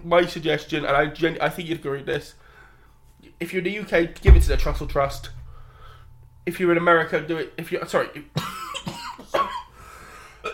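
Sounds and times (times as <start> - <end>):
speech: 0.0 - 2.4, 3.4 - 5.4, 6.4 - 8.5
harsh coughing: 8.4 - 10.5.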